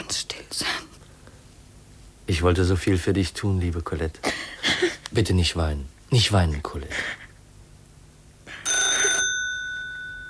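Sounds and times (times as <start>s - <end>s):
speech: 2.3s - 4.4s, 5.1s - 7.2s
telephone ringing: 8.6s - 10.2s.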